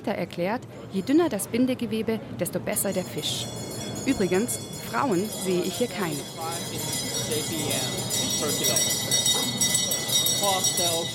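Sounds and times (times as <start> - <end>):
speech: 0.0 - 9.0, 10.4 - 11.1
hand bell rung to start a fish auction: 2.8 - 11.1.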